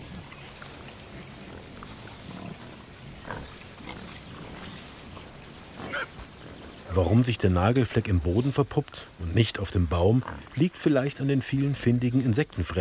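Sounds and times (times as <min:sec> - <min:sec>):
wild pigs grunting and snuffling while rooting the forest floor: 0:00.0 - 0:12.7
wild pig squeals: 0:05.8 - 0:06.2
speech: 0:07.0 - 0:12.7.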